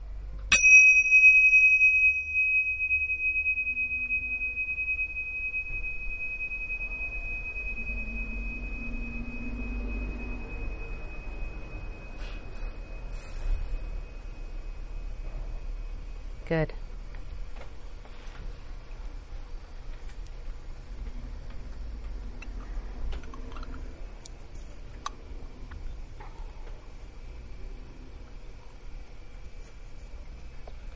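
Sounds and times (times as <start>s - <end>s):
single bell ringing with a clear high tone: 0.5s - 14.9s
speech: 16.5s - 16.8s.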